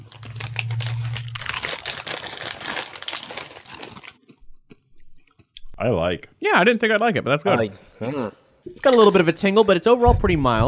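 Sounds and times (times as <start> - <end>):
crunching Indian curry flavored tortilla chips during a tasting: 0.0 - 5.6
speech: 5.8 - 10.6.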